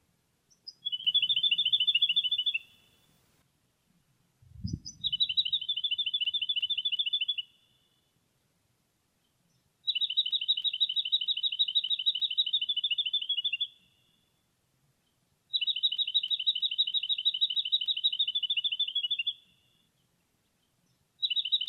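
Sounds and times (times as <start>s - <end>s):
jacky winter calling: 0.5s - 3.4s, 4.6s - 7.9s, 9.9s - 14.2s, 15.5s - 19.6s.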